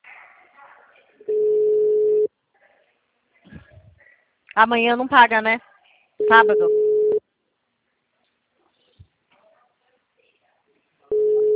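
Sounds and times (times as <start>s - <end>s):
telephone line tone while placing a call: 1.3s - 2.3s, 6.2s - 7.2s, 11.1s - 11.5s
speech: 4.6s - 5.7s, 6.3s - 6.8s.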